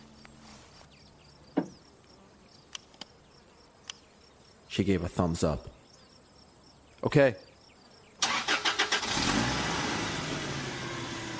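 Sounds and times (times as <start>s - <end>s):
speech: 4.8s - 5.8s, 7.1s - 7.5s
van engine cranking and running: 8.2s - 11.3s.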